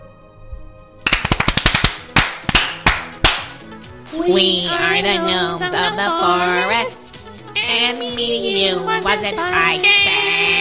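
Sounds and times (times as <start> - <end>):
group clapping: 1.1 - 3.6
speech: 4.1 - 7.0, 7.7 - 10.1.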